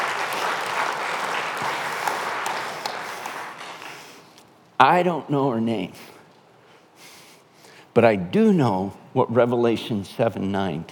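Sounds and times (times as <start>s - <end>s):
audience applause: 0.0s - 4.2s
speech: 4.8s - 6.1s, 8.0s - 10.9s.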